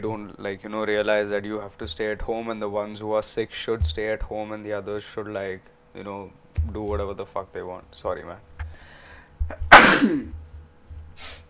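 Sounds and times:
speech: 0:00.0 - 0:08.5, 0:09.5 - 0:10.4
quiet low hum: 0:00.0 - 0:11.2
person sneezing: 0:09.5 - 0:10.4
soft exhale: 0:11.2 - 0:11.4.

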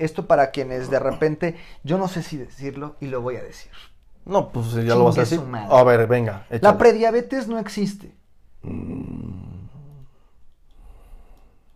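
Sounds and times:
speech: 0:00.0 - 0:09.5
slow deep breathing: 0:08.6 - 0:11.7.

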